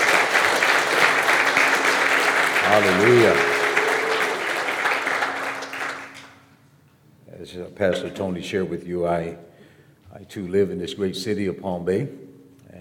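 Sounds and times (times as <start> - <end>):
room full of people applauding: 0.0 - 6.4
speech: 2.8 - 3.5, 7.8 - 9.5, 10.1 - 12.7.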